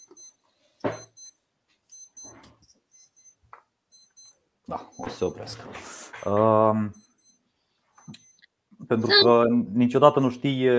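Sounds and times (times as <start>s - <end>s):
alarm ringing with rapid high-pitched electronic beeps: 0.0s - 5.5s, 6.9s - 8.5s
speech: 4.7s - 7.0s, 8.9s - 10.7s.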